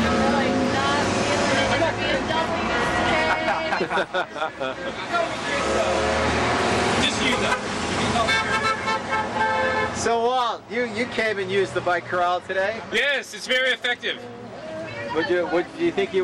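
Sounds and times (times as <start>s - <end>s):
car and bus horns honking in street traffic: 0.0s - 4.0s, 4.9s - 10.2s
crowd chattering: 0.0s - 16.2s
loud busy street traffic: 0.0s - 16.2s
laughter: 3.0s - 5.4s
speech: 3.8s - 6.3s, 7.2s - 8.5s, 9.1s - 14.4s, 15.1s - 16.2s.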